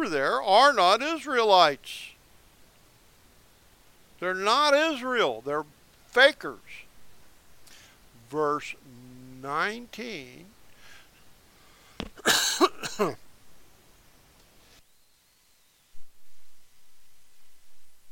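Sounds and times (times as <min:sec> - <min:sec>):
speech: 0:00.0 - 0:02.1, 0:04.2 - 0:06.8, 0:08.3 - 0:10.5, 0:12.2 - 0:13.2
person with a frog in the throat coughing: 0:12.2 - 0:13.2.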